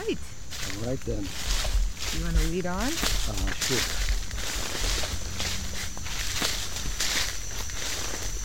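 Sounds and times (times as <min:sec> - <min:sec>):
dense hissing tropical forest ambience: 0:00.0 - 0:08.4
footsteps walking into a tropical forest: 0:00.0 - 0:08.4
speech: 0:00.1 - 0:04.0.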